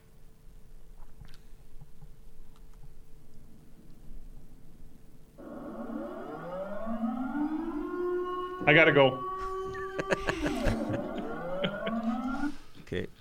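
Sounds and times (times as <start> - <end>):
civil defense air raid siren wailing: 5.4 - 12.7
speech: 8.7 - 9.3, 10.1 - 10.8
laughter: 9.4 - 12.6.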